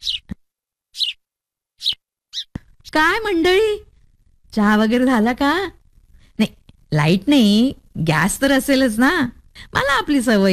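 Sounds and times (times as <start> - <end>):
sparrow chirping: 0.0 - 1.2, 1.8 - 3.0
speech: 2.9 - 3.9, 4.5 - 5.8, 6.4 - 10.5.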